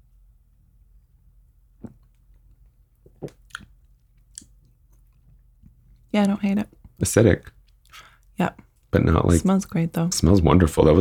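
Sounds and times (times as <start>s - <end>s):
low hum: 0.0s - 10.9s
person sipping wine with wet slurps and lip smacks: 1.8s - 3.7s
speech: 6.1s - 7.6s, 8.4s - 10.9s.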